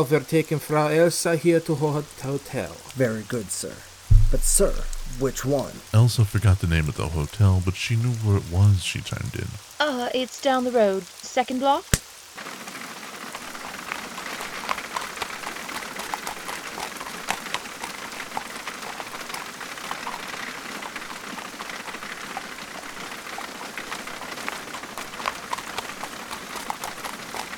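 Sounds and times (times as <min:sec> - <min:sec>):
speech: 0:00.0 - 0:12.5
heavy torrential rain pouring on a street: 0:00.0 - 0:26.6
hooves of horses pulling a carriage clip-clopping: 0:13.6 - 0:27.5.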